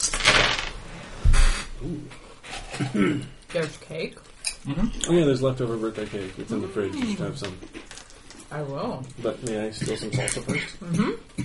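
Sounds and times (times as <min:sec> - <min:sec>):
dice clattering across a table during a tabletop role-playing game: 0:00.0 - 0:00.8
speech: 0:02.8 - 0:11.4.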